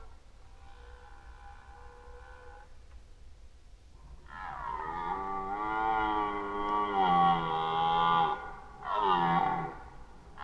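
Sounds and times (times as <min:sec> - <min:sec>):
faint background hiss: 0:00.0 - 0:10.4
red deer roaring during the rut: 0:04.3 - 0:10.4.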